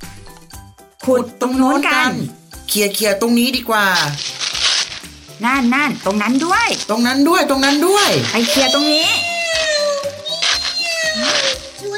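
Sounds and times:
speech: 1.1 - 4.4, 5.4 - 9.3
cat meowing in loud drawn-out cries: 8.1 - 11.8.

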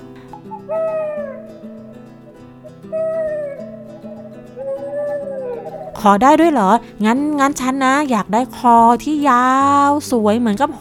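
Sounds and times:
steady low drone: 0.0 - 6.0
owl hooting: 0.4 - 6.3
speech: 0.7 - 1.2, 6.0 - 10.7.

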